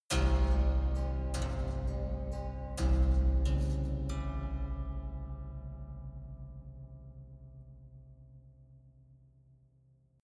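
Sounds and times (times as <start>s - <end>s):
haunted eerie rattling strings sequence: 0.1s - 7.7s.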